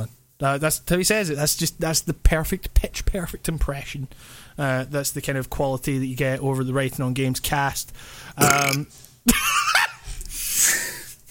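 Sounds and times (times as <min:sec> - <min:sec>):
speech: 0:00.4 - 0:09.6
loud deep croaky burp: 0:08.4 - 0:08.9.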